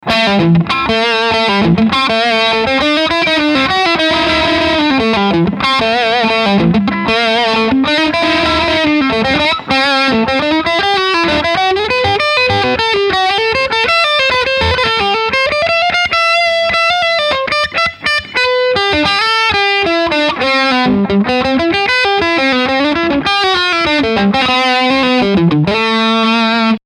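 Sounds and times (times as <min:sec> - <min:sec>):
electric guitar with overdrive on bridge pickup: 0:00.0 - 0:26.8.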